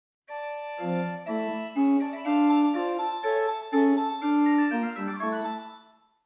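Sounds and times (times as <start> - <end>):
organ: 0.6 - 5.8.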